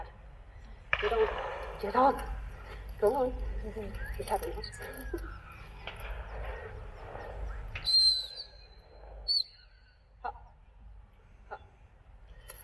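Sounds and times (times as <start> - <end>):
rustling outdoor noise: 0.0 - 12.6
speech: 1.0 - 2.4, 3.0 - 5.4
gundog drop whistle blast: 7.8 - 8.7.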